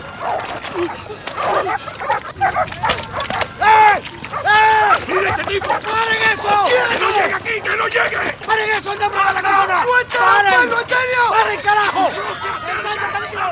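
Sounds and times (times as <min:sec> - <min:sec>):
clamoring voices: 0:00.0 - 0:13.5
laughter: 0:00.0 - 0:13.5
dog barking and whimpering with high-pitched yelps and whines: 0:00.1 - 0:08.4
speech: 0:00.7 - 0:02.8, 0:05.5 - 0:13.5.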